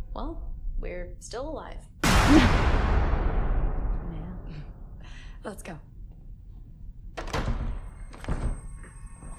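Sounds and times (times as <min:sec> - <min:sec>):
speech: 0:00.2 - 0:03.0, 0:05.4 - 0:05.9
door being forced open with heavy thuds: 0:07.1 - 0:08.7.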